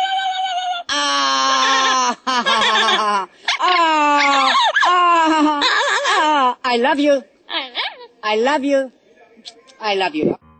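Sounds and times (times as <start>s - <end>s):
cockatoo calling harshly: 0.0s - 6.4s, 7.5s - 8.2s
speech: 6.8s - 7.3s, 8.3s - 10.4s.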